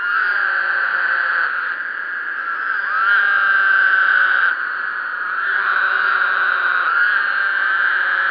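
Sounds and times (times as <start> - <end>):
Woodhouse's toad chorus of overlapping buzzy nasal trills: 0.0 - 8.2.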